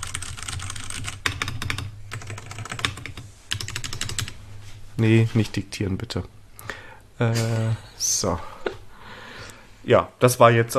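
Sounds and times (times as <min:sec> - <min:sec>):
rapid typing on a computer keyboard: 0:00.0 - 0:04.4
speech: 0:05.0 - 0:06.4, 0:07.2 - 0:08.5, 0:09.8 - 0:10.7.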